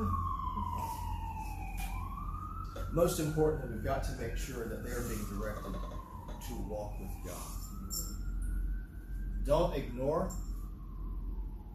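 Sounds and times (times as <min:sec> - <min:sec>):
ambulance siren wailing: 0:00.0 - 0:11.7
speech: 0:02.9 - 0:08.0, 0:09.5 - 0:10.5.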